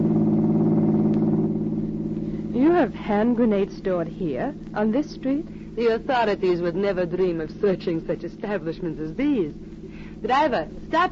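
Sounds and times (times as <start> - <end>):
car engine drone driving along a street: 0.0 - 3.5
speech: 2.8 - 11.1.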